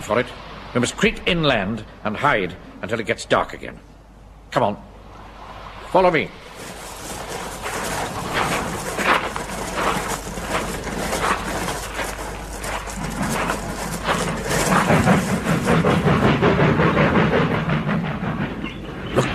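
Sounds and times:
train rumbling and clanking at railway sidings: 0.0 - 19.3
speech: 0.1 - 3.9, 4.5 - 4.9, 5.9 - 6.8.

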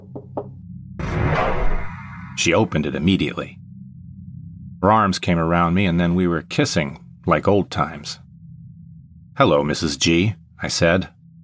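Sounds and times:
solid knocks on the door of a living unit: 0.0 - 0.6
speech: 2.4 - 3.6, 4.8 - 8.2, 9.4 - 11.2.

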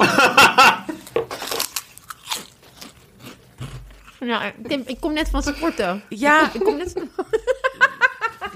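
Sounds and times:
laughter: 0.0 - 1.0, 6.3 - 8.5
person biting and crunching crispy prawn crackers: 0.9 - 4.2
speech: 4.2 - 7.2.

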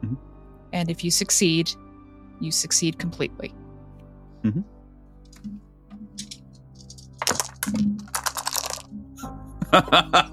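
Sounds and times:
speech: 0.8 - 1.8, 2.4 - 3.6, 4.4 - 4.8, 9.7 - 10.3
dice rattling and tumbling across a hard surface: 6.2 - 8.9
laughter: 9.6 - 10.3.

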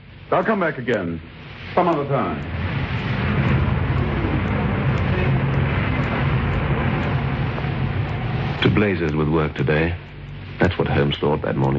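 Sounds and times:
car road noise hiss: 0.0 - 11.7
speech: 0.3 - 2.6, 8.8 - 11.7
car engine rumbling while driving: 2.0 - 10.8.

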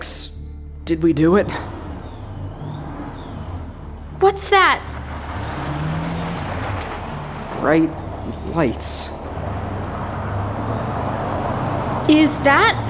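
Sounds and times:
car engine rumbling in a tunnel: 0.0 - 12.8
speech: 0.9 - 1.7, 4.2 - 4.9, 7.6 - 9.2, 12.1 - 12.8.

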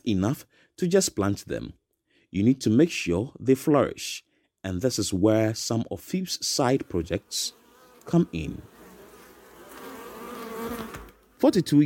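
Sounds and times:
speech: 0.0 - 8.7, 10.7 - 11.8
many bees raised by a farmer in Ghana buzzing: 6.9 - 11.4.

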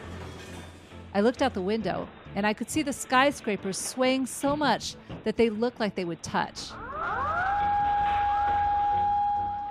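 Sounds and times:
speech: 1.2 - 6.8
emergency sirens wailing: 6.7 - 9.6.

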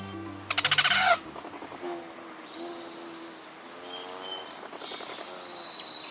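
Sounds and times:
rufous hummingbird chips and squeaky calls: 0.0 - 4.5.

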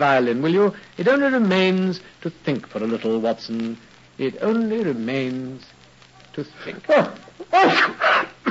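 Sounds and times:
speech: 0.0 - 5.7, 6.4 - 8.0
person sneezing after taking snuff: 6.8 - 8.4.

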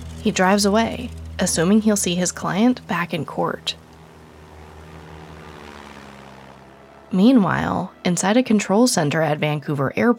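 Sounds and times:
Cessna propeller plane engine droning: 0.0 - 10.1
speech: 0.2 - 3.8, 7.1 - 10.1.

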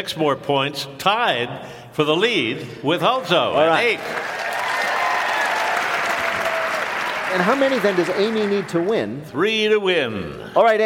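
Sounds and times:
speech: 0.0 - 4.4, 7.3 - 10.8
Broadway theater audience applauding and cheering: 3.7 - 9.2.

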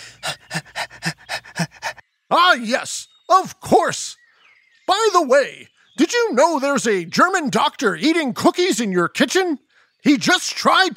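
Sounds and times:
dog-like panting, possibly a person imitating a dog: 0.0 - 2.0
speech: 2.3 - 4.2, 5.0 - 10.9.

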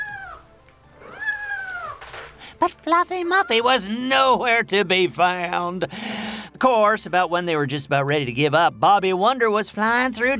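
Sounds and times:
cat meowing: 0.0 - 0.4, 1.0 - 2.0
speech: 2.6 - 10.3.

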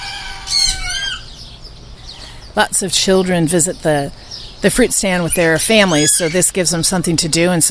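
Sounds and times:
squawking fowl in a farm aviary: 0.0 - 1.3
chickens clucking in a farm aviary: 0.0 - 1.9
speech: 2.6 - 7.6.

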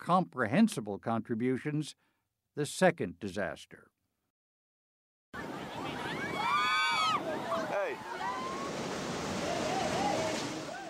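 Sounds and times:
speech: 0.0 - 3.9
surf breaking on a beach in Indonesia: 5.4 - 10.8.

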